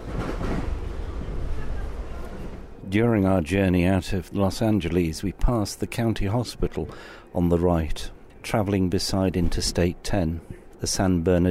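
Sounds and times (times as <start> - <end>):
passenger train running at speed: 0.0 - 3.0
speech: 2.9 - 11.4.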